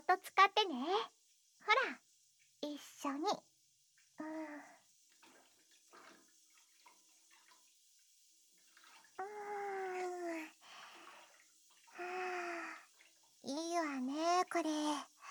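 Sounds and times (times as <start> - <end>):
steady fizzing hiss: 0.0 - 15.2
speech: 0.1 - 1.2, 2.6 - 3.5, 4.2 - 4.7, 14.5 - 15.1
bath water sloshing as someone steps in: 5.0 - 14.5.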